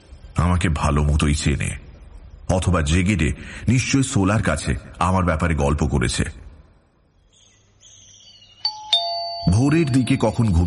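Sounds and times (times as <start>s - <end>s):
speech: 0.4s - 1.8s, 2.5s - 6.4s, 9.6s - 10.6s
doorbell ding-dong chime: 8.7s - 10.6s.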